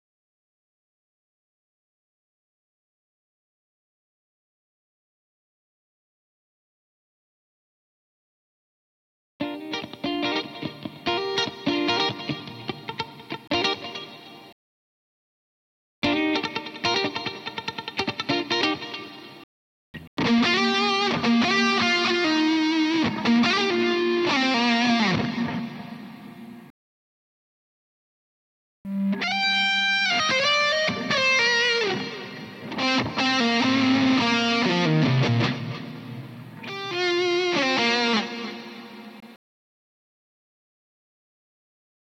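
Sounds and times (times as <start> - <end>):
electric guitar lead multitrack: 9.4 - 14.5, 16.0 - 19.4, 20.0 - 26.7, 28.9 - 39.4.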